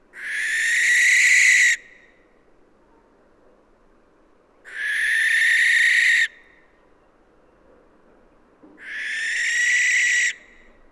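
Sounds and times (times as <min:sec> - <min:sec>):
Western barn owl Tyto alba screeching: 0:00.2 - 0:01.9, 0:04.7 - 0:06.4, 0:08.8 - 0:10.7.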